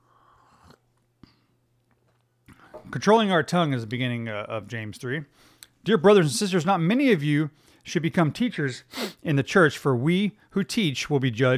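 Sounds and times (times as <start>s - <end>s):
sipping a hot drink: 0.0s - 1.2s
speech: 2.9s - 11.5s.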